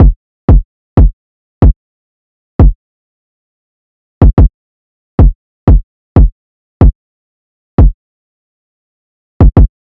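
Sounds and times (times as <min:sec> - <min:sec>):
kick drum loop: 0:00.0 - 0:01.8, 0:02.6 - 0:02.8, 0:04.2 - 0:04.5, 0:05.2 - 0:07.0, 0:07.8 - 0:08.0, 0:09.4 - 0:09.8.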